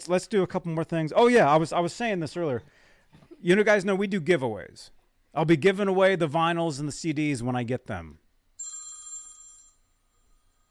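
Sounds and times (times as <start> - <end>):
speech: 0.0 - 8.2
phone ringing with electronic tone: 8.6 - 10.6.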